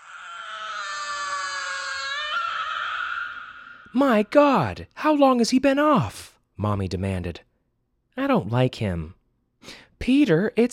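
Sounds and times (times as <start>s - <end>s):
robot baby screeching wail: 0.0s - 4.0s
speech: 3.9s - 7.5s, 8.2s - 10.7s.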